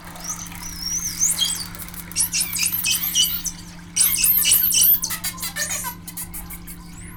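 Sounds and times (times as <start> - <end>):
high sweeping whistles from aggressive animals: 0.3 - 6.9.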